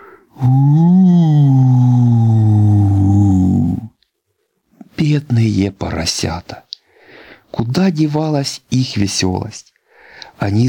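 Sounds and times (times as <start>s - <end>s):
person imitating a wolf howling menacingly: 0.4s - 3.9s
speech: 6.0s - 6.7s, 7.6s - 9.7s, 10.4s - 10.6s.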